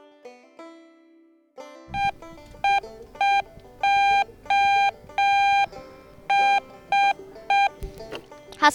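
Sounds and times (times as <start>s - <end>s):
Morse code SOS electronic beeps beside a harbor museum: 2.0s - 7.8s.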